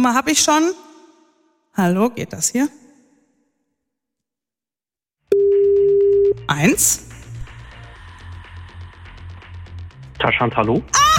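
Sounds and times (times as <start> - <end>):
speech: 0.0 - 0.9, 1.8 - 2.8, 6.5 - 7.1, 10.2 - 11.1
telephone ringback tone while calling: 5.3 - 6.4.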